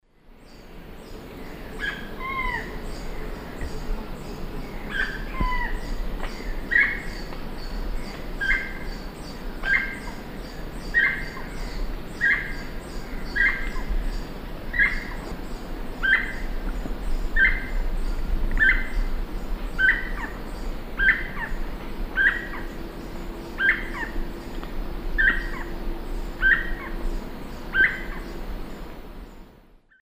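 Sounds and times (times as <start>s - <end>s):
Piaya melanogaster call and song in South American Eastern Lowlands: 0.1s - 29.6s.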